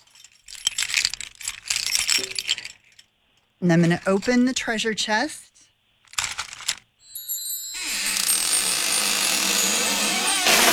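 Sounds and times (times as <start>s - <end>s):
bunch of keys jangling: 0.0s - 3.1s, 6.1s - 10.7s
speech: 3.6s - 5.4s.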